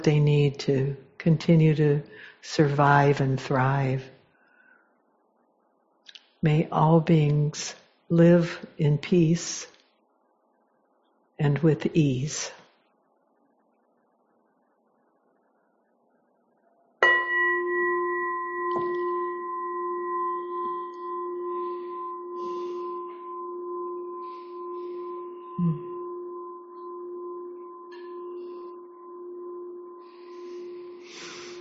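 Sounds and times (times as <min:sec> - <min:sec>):
speech: 0:00.0 - 0:04.2, 0:06.4 - 0:09.7, 0:11.4 - 0:12.6
single bell struck and ringing: 0:17.0 - 0:31.5.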